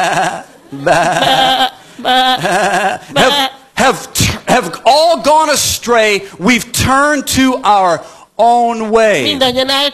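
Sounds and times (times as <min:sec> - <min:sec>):
sheep bleating: 0:00.0 - 0:03.6
speech: 0:00.0 - 0:04.0, 0:04.6 - 0:09.9.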